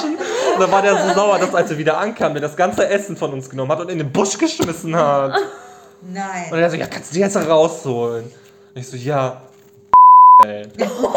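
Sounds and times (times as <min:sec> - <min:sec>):
laughter: 0:00.0 - 0:02.2, 0:10.8 - 0:11.1
speech: 0:00.6 - 0:09.5, 0:10.4 - 0:11.1
censor beep: 0:09.9 - 0:10.5.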